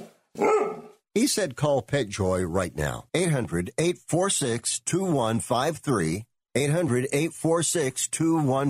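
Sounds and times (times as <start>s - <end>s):
dog barking: 0.3s - 1.0s
speech: 1.3s - 8.6s.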